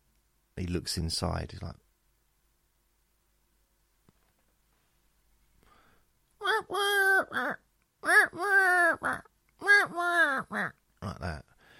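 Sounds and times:
speech: 0:00.6 - 0:01.8
person imitating a pigeon-like bird call: 0:06.4 - 0:11.5.

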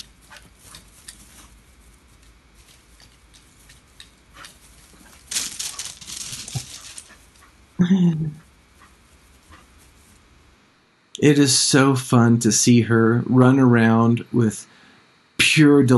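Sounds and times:
dog panting in its new backyard: 0:00.0 - 0:01.6, 0:03.0 - 0:05.9, 0:08.4 - 0:10.0
speech: 0:07.8 - 0:08.4, 0:11.2 - 0:14.8, 0:15.6 - 0:15.9.

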